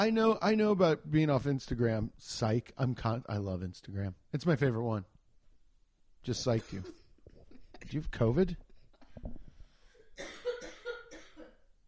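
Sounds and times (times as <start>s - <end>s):
speech: 0.0s - 5.1s, 6.2s - 7.0s, 7.8s - 8.6s
phlegmy congested wet cough: 10.2s - 11.7s.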